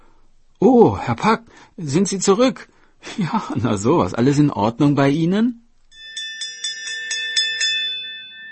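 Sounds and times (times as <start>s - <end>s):
speech: 0.6s - 5.6s
school bell ringing: 5.9s - 8.4s.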